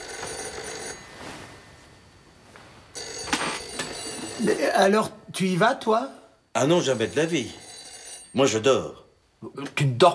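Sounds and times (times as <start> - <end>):
telephone bell ringing with a metallic trill: 0.0 - 1.5, 2.9 - 4.8, 6.6 - 8.9
speech: 4.4 - 7.6, 8.4 - 10.1.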